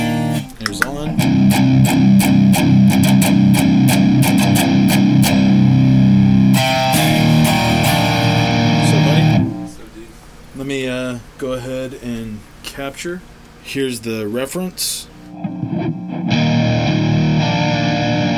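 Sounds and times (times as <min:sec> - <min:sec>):
electric guitar through overdrive distortion pedal playing chugging chords: 0:00.0 - 0:09.7, 0:15.3 - 0:18.3
speech: 0:12.8 - 0:15.1.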